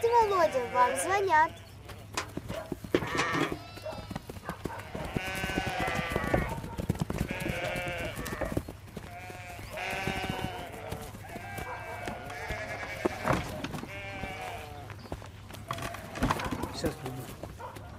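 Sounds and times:
sheep bleating by a farm fence: 0.0 - 2.2, 3.0 - 6.6, 7.2 - 14.9
sheep chewing by a farm fence: 0.0 - 17.9
speech: 0.2 - 1.6.

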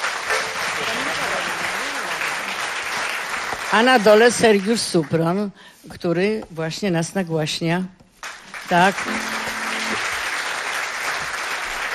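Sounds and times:
audience applause at a live radio concert: 0.0 - 4.2, 8.4 - 11.9
speech: 0.8 - 1.7, 3.7 - 8.0, 8.7 - 9.4.

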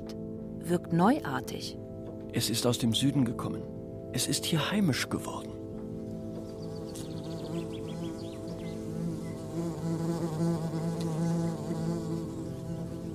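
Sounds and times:
speech: 0.7 - 5.6
wasps buzzing around fallen figs under a fig tree: 6.2 - 13.1.

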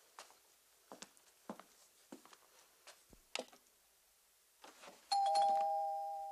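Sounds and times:
apartment doorbell ringing: 5.1 - 6.3.

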